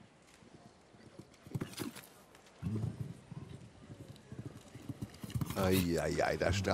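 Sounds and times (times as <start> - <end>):
horse hooves galloping over turf during a show-jumping jump-off: 1.0 - 6.7
speech: 5.6 - 6.7.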